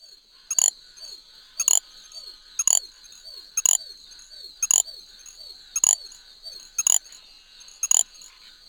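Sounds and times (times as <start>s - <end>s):
little grass frog chirping: 0.5s - 0.7s, 1.6s - 3.8s, 4.6s - 6.2s, 6.8s - 8.3s.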